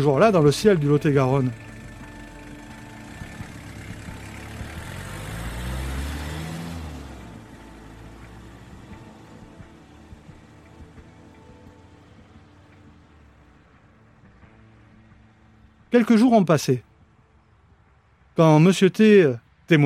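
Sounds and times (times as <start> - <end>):
speech: 0.0 - 1.6, 15.9 - 16.9, 18.4 - 19.8
car engine revving as the car pulls away in Lot-et-Garonne France: 0.0 - 15.1.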